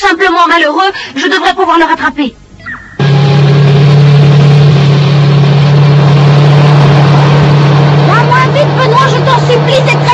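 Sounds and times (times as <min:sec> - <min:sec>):
speech: 0:00.1 - 0:02.4
microcomputer-controlled motorcycle engine roaring as a rider sets off: 0:03.0 - 0:10.1.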